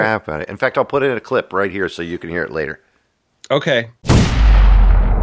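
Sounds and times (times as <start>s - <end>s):
speech: 0.0s - 2.9s, 3.5s - 4.2s
loud harsh gunshot-like crack of a bullet in a Windows video game: 4.0s - 5.1s.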